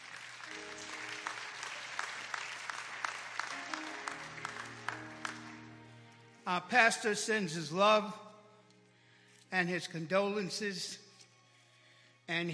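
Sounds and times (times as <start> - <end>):
congregation clapping hands: 0.0 - 6.4
speech: 6.5 - 8.2, 9.5 - 11.0, 12.3 - 12.5.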